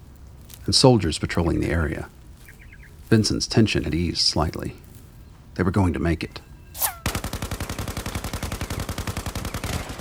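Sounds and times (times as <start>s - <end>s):
speech: 0.7s - 2.2s, 3.1s - 4.9s, 5.6s - 6.9s
rapid automatic gunfire radio-play sound effect: 7.0s - 9.9s.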